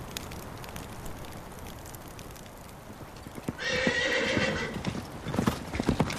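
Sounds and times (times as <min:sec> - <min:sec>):
horse hooves galloping over rough ground: 0:00.0 - 0:06.1
horse neighing: 0:03.6 - 0:04.8.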